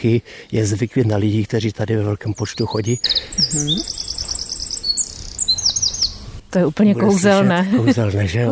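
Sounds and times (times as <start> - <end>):
speech: 0.0 - 4.0, 6.5 - 8.5
faint outdoor background noise in zoo wetlands: 0.0 - 8.5
Eurasian Wren singing from a treetop in zoo wetlands in spring: 1.8 - 7.6.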